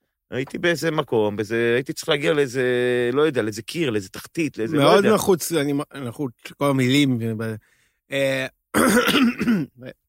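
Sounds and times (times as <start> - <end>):
speech: 0.3 - 10.0
person coughing and clearing their throat: 8.8 - 9.9.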